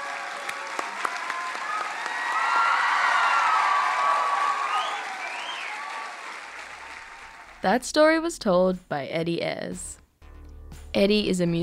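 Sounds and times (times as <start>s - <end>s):
faint whoops and cheers: 0.0s - 7.4s
crowd applauding: 0.0s - 7.7s
speech: 7.6s - 10.0s, 11.0s - 11.6s.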